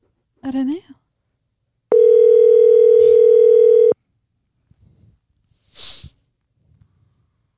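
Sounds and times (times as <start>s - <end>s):
speech: 0.4s - 1.0s
electronic telephone ring tone of a phone call: 1.9s - 4.0s
breathy sniff: 3.0s - 3.3s, 4.7s - 7.4s.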